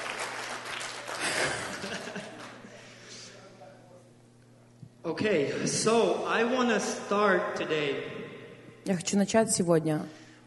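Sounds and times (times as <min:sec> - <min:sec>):
church audience clapping: 0:00.0 - 0:02.7
people chuckling: 0:01.1 - 0:02.8
speech: 0:05.2 - 0:08.2, 0:08.8 - 0:10.2.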